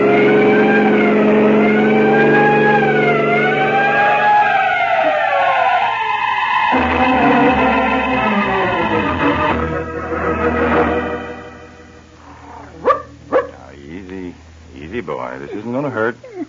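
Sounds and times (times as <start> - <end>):
vehicle siren wailing: 0.0 - 11.6
road noise: 0.0 - 16.2.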